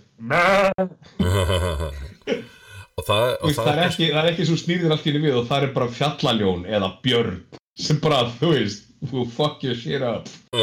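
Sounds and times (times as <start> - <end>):
speech: 0.2 - 1.2, 3.1 - 10.6
human voice imitating a sheep's bleat: 0.2 - 3.9.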